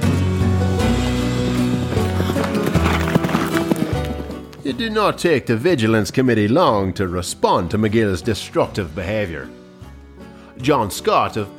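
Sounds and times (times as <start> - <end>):
horse hooves clip-clopping as a rider rides out of town: 0.7 - 5.0
speech: 4.7 - 9.6, 10.6 - 11.5.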